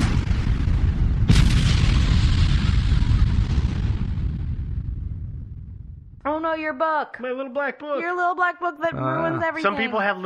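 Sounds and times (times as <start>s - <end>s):
deep sustained rumble after an explosion: 0.0s - 6.2s
heavy explosion sound effect: 0.0s - 6.2s
speech: 6.4s - 10.2s.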